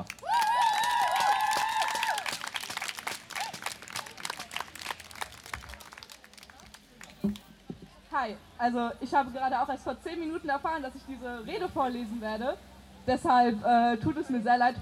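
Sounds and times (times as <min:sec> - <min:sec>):
crowd applauding: 0:00.0 - 0:07.7
speech: 0:08.2 - 0:14.8.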